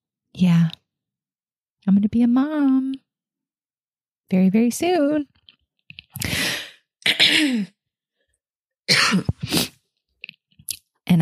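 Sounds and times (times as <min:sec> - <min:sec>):
speech: 0:00.4 - 0:00.8, 0:02.0 - 0:03.0, 0:04.3 - 0:05.3
loud coughs: 0:07.0 - 0:07.8, 0:08.9 - 0:09.7.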